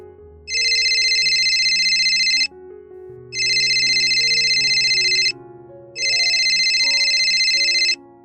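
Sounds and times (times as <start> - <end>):
soft musical backing: 0.0 - 8.2
telephone ringing for an incoming call: 0.5 - 2.5, 3.4 - 5.3, 6.0 - 8.0.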